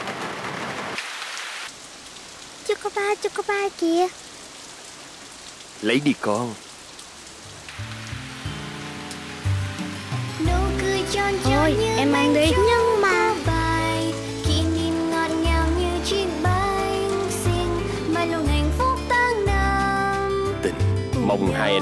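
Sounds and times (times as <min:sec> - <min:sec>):
steady rain pattering on a hard surface: 0:00.0 - 0:19.4
speech: 0:02.7 - 0:04.2, 0:05.8 - 0:06.6, 0:10.5 - 0:13.2, 0:21.3 - 0:21.8
gentle music: 0:07.3 - 0:21.8.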